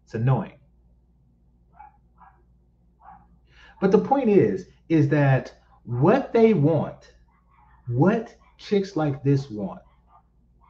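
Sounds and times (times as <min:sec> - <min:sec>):
low constant hum: 0:00.0 - 0:10.6
speech: 0:00.1 - 0:00.6, 0:03.8 - 0:07.1, 0:07.9 - 0:09.9
dogs barking beyond a yard fence: 0:01.7 - 0:04.2, 0:07.2 - 0:08.9, 0:09.7 - 0:10.6.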